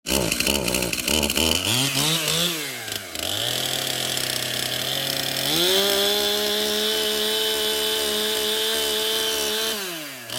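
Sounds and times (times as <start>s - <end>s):
chainsaw: 0.0s - 10.3s.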